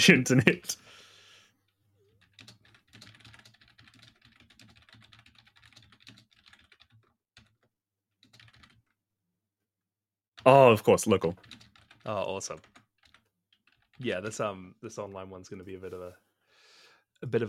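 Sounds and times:
speech: 0:00.0 - 0:01.0, 0:10.4 - 0:12.7, 0:14.0 - 0:16.2, 0:17.2 - 0:17.4
typing on a computer keyboard: 0:02.0 - 0:09.0, 0:11.2 - 0:14.0.

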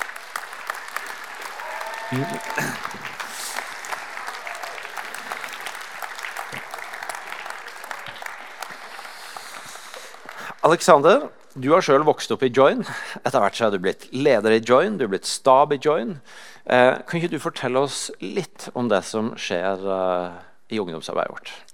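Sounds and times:
audience applause: 0:00.0 - 0:10.8
speech: 0:02.1 - 0:03.2, 0:10.6 - 0:21.6.

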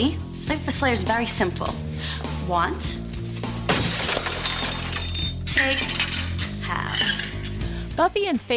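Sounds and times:
speech: 0:00.8 - 0:03.0, 0:05.6 - 0:06.0, 0:08.0 - 0:08.5
hardware store shop window glass shattering: 0:03.7 - 0:07.6
glass shards tinkling and scattering: 0:03.8 - 0:07.6.

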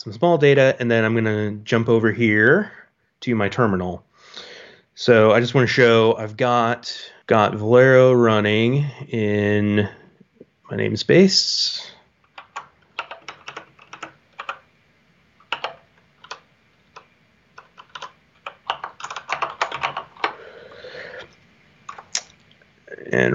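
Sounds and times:
speech: 0:00.0 - 0:10.0, 0:10.7 - 0:12.0
typing on a computer keyboard: 0:12.3 - 0:14.7, 0:15.4 - 0:20.4, 0:21.9 - 0:22.2.

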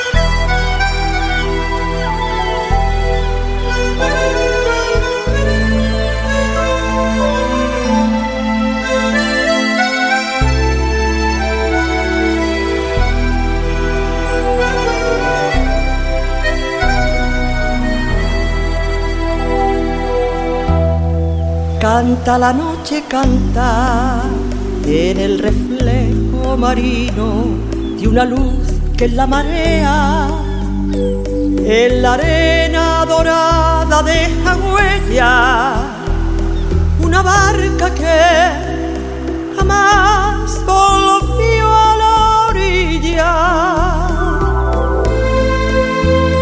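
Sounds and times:
song with vocals, deep bass line and layered instruments: 0:00.1 - 0:46.4
speech: 0:22.2 - 0:30.3, 0:31.7 - 0:35.9.

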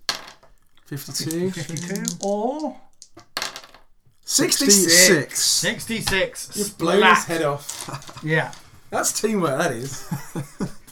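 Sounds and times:
dice rolling on a hard table: 0:00.0 - 0:05.2, 0:05.8 - 0:09.3
speech: 0:00.9 - 0:03.3, 0:04.3 - 0:10.7
laughter: 0:01.0 - 0:02.6, 0:04.3 - 0:10.9.

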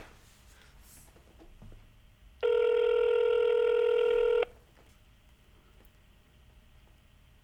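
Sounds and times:
telephone electronic ring tone: 0:02.4 - 0:04.5.

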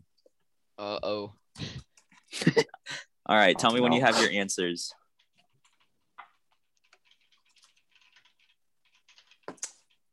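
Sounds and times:
speech: 0:00.8 - 0:01.8, 0:03.3 - 0:05.0
frantic typing on a computer keyboard: 0:05.0 - 0:10.1.

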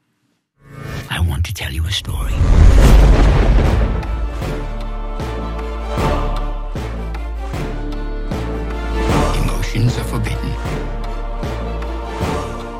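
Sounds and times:
speech: 0:01.4 - 0:03.5, 0:09.8 - 0:11.6
deep loud cinematic boom: 0:02.2 - 0:05.0
sustained music from the trailer of a stage musical: 0:02.5 - 0:12.7.

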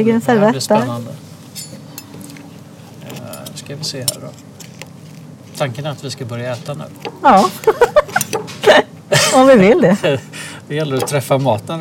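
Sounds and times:
speech: 0:00.0 - 0:01.2, 0:03.7 - 0:04.5, 0:05.6 - 0:08.0, 0:08.7 - 0:11.8
soft hum: 0:00.0 - 0:11.8
metal cutlery clinking and scraping against a plate: 0:01.6 - 0:02.3, 0:03.0 - 0:04.4, 0:06.5 - 0:08.6, 0:10.8 - 0:11.3
laughter: 0:07.2 - 0:10.5.

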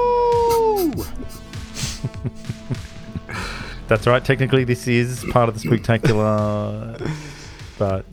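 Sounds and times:
man imitating a wolf howl: 0:00.0 - 0:01.4
people laughing: 0:00.5 - 0:04.3, 0:05.1 - 0:07.5
speech: 0:03.9 - 0:08.1.

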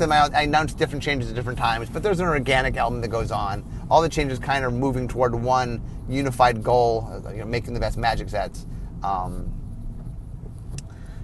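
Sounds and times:
speech: 0:00.0 - 0:09.6
car driving in traffic: 0:00.0 - 0:11.2.

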